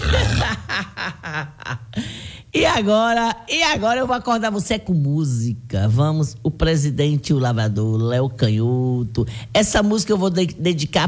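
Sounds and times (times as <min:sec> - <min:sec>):
pig grunting and squealing: 0:00.0 - 0:00.7
speech: 0:02.8 - 0:11.0.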